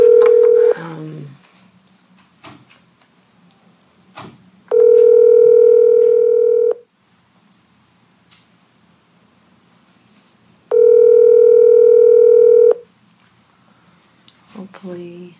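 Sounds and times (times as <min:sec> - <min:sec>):
telephone dial tone: 0:00.0 - 0:00.8, 0:04.7 - 0:06.8, 0:10.7 - 0:12.8.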